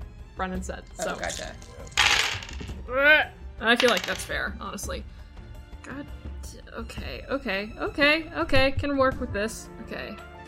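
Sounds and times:
speech: 0:00.4 - 0:02.2, 0:02.9 - 0:05.2, 0:05.8 - 0:10.3
dice tumbling across a hard tabletop: 0:01.1 - 0:02.8, 0:03.7 - 0:04.4.

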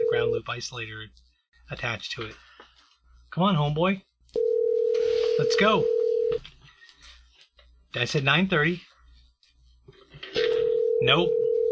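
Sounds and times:
speech: 0:00.2 - 0:02.6, 0:03.3 - 0:04.5, 0:05.4 - 0:06.6, 0:07.9 - 0:08.9, 0:11.0 - 0:11.4
phone ringback tone as a call rings out toward voicemail: 0:04.4 - 0:06.4, 0:10.4 - 0:11.7.

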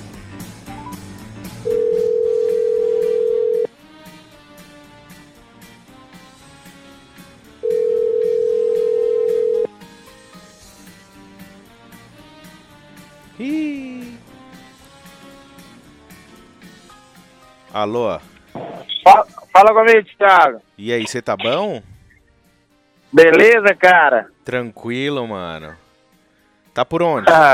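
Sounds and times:
music: 0:00.0 - 0:27.5
telephone ringback tones of an outgoing call: 0:01.6 - 0:03.7, 0:07.6 - 0:09.7
speech: 0:17.8 - 0:18.3, 0:19.1 - 0:21.9, 0:23.1 - 0:25.8, 0:26.8 - 0:27.5.

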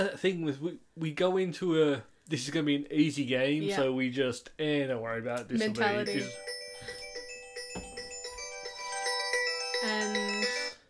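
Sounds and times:
speech: 0:00.0 - 0:06.5
melodic electronic phone ringtone: 0:05.9 - 0:10.8.

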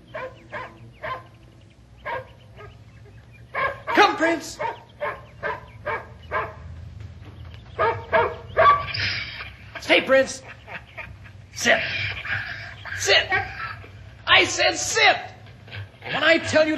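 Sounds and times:
dog barking during obedience training: 0:00.0 - 0:01.4, 0:02.0 - 0:02.8, 0:03.5 - 0:06.7, 0:07.8 - 0:09.0
man calling out a command: 0:03.6 - 0:04.8, 0:11.6 - 0:11.9, 0:12.9 - 0:13.5, 0:14.2 - 0:15.4, 0:16.0 - 0:16.7
speech: 0:04.2 - 0:04.7, 0:10.1 - 0:10.5, 0:11.6 - 0:12.0, 0:13.0 - 0:13.5, 0:14.4 - 0:15.3, 0:16.1 - 0:16.7
laughter: 0:08.9 - 0:14.6.

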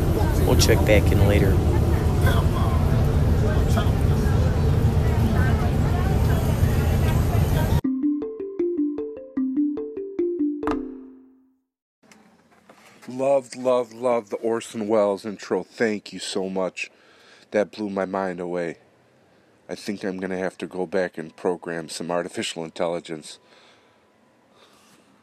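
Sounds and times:
bus interior rumbling while riding: 0:00.0 - 0:07.8
faint murmur of voices on a bus: 0:00.0 - 0:07.8
speech: 0:00.5 - 0:02.6, 0:13.2 - 0:18.8, 0:19.7 - 0:23.5
plucked descending musical notes: 0:07.8 - 0:11.5.

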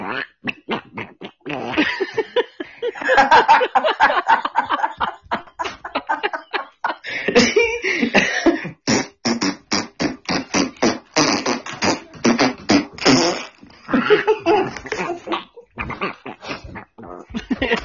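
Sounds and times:
sputtering fart noises: 0:00.0 - 0:02.3, 0:08.8 - 0:17.8
laughter: 0:01.7 - 0:08.8, 0:13.9 - 0:15.7, 0:16.5 - 0:17.8.

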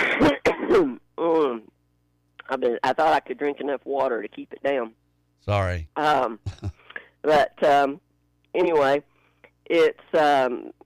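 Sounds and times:
person coughing: 0:00.0 - 0:01.0, 0:06.5 - 0:06.7
throat clearing: 0:00.0 - 0:01.0, 0:06.5 - 0:06.8
speech: 0:00.2 - 0:01.0, 0:02.6 - 0:08.0, 0:08.6 - 0:09.1, 0:09.7 - 0:10.8.

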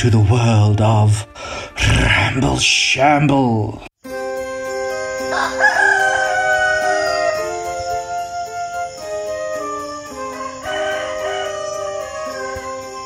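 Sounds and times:
sustained musical tones: 0:00.0 - 0:02.8, 0:04.0 - 0:13.0
speech: 0:00.0 - 0:03.9, 0:05.4 - 0:05.9
rooster crowing: 0:05.2 - 0:13.0.

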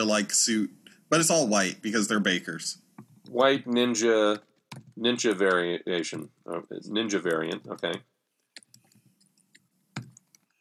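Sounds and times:
faint low hum: 0:00.0 - 0:04.4, 0:05.0 - 0:08.0
speech: 0:00.0 - 0:08.1
typing on a computer keyboard: 0:03.7 - 0:06.4, 0:07.1 - 0:08.0, 0:08.6 - 0:10.5.

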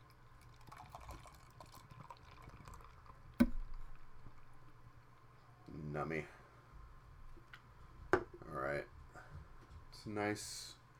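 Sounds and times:
beer poured from cans into two wide-mouth pint glasses: 0:00.3 - 0:04.0
speech: 0:06.0 - 0:06.4, 0:10.0 - 0:10.8.

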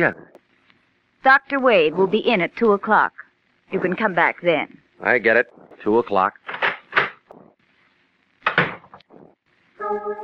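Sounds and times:
speech: 0:00.0 - 0:00.3, 0:01.2 - 0:06.4, 0:09.9 - 0:10.2
office door opening and closing in a new building: 0:05.8 - 0:07.3, 0:08.4 - 0:09.1.

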